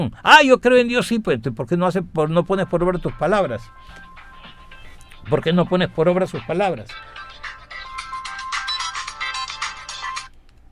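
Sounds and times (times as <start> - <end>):
speech: 0.0 - 4.1, 5.2 - 7.5
phone ringtone for an incoming call: 2.6 - 10.3.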